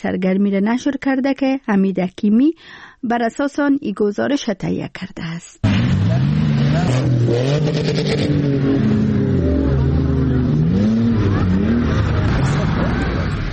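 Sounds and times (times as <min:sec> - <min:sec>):
speech: 0:00.0 - 0:09.2
SUV engines revving while racing over sand dunes: 0:05.6 - 0:13.5.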